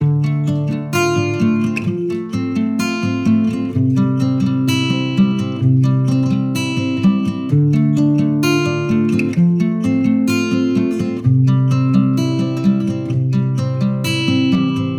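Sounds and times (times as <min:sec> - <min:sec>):
acoustic guitar lead loop in A minor: 0:00.0 - 0:14.9.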